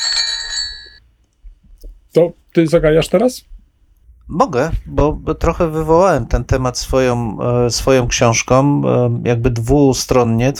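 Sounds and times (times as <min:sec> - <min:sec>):
bell rung with bright sustained metallic ring: 0:00.0 - 0:01.0
quiet low rumbling: 0:01.5 - 0:10.5
speech: 0:02.1 - 0:03.6, 0:04.3 - 0:10.5.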